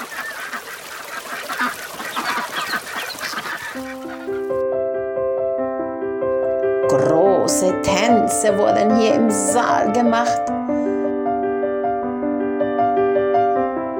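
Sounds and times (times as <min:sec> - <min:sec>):
flock of ducks quacking and honking on a lake: 0:00.0 - 0:04.6
bright steady melody of sustained musical notes: 0:03.8 - 0:13.9
speech: 0:06.9 - 0:10.5.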